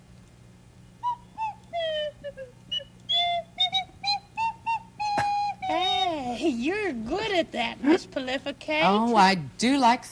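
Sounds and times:
slide whistle playing short swooping notes: 1.0 - 6.1
speech: 6.5 - 10.1.

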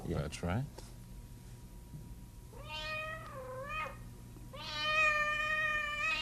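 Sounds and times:
cat meowing: 2.6 - 6.2.

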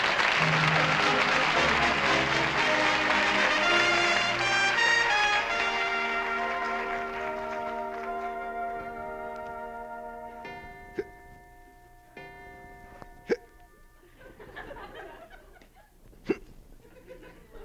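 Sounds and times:
soft sustained tones: 0.0 - 15.2
sharp abrupt hiccups: 13.2 - 13.6, 16.2 - 16.6
laughter: 14.0 - 15.9, 16.8 - 17.6.

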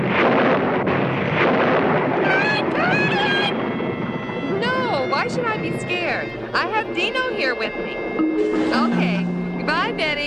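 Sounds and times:
thunder rolling and crackling during a storm: 0.0 - 10.2
high wavering whine: 3.2 - 10.2.

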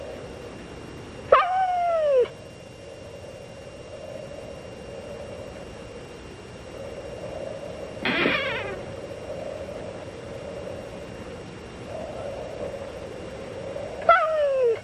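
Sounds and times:
quiet hum: 0.0 - 14.8
dog whining: 1.3 - 2.4, 8.0 - 8.9, 14.0 - 14.8.

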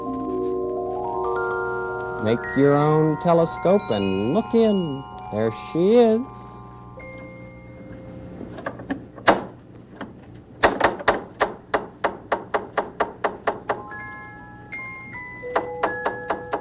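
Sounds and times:
sustained musical tones: 0.0 - 8.8, 13.8 - 16.5
speech: 2.2 - 6.5
knocking on a door: 10.6 - 13.8, 15.6 - 16.5.

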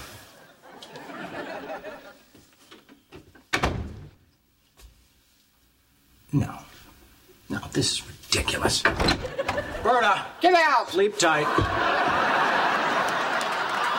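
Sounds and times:
laughter: 0.3 - 2.4, 9.2 - 10.4, 11.0 - 13.9
door shutting with a solid thud: 3.1 - 4.2, 8.8 - 9.7
speech: 6.3 - 6.6, 7.8 - 11.9.

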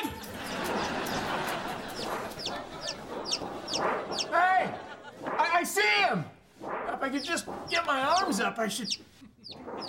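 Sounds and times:
laughter: 0.1 - 5.7, 9.0 - 9.8
baby chick peeping: 0.3 - 4.3, 7.2 - 9.8
speech: 7.9 - 9.2.

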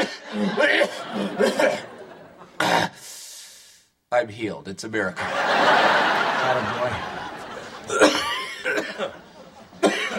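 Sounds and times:
short raspy coughs from one person: 0.0 - 1.8, 7.9 - 9.1, 9.8 - 10.1
laughter: 0.0 - 2.6, 5.2 - 10.1
speech: 0.6 - 1.9, 4.1 - 7.1, 8.8 - 9.2.

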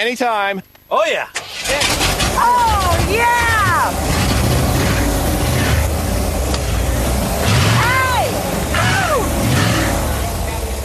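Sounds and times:
speech: 0.0 - 4.2
repaired engine roaring into life before a race: 1.4 - 10.8
excited voices cheering: 7.8 - 9.9.

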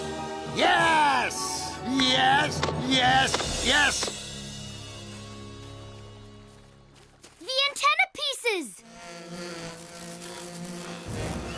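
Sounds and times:
speech: 0.6 - 4.1
dense steady buzzing drone: 8.8 - 11.5.

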